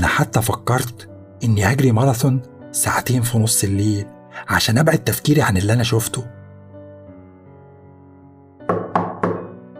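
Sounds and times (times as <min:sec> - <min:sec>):
speech: 0:00.2 - 0:06.4
knocking on a door: 0:08.6 - 0:09.6.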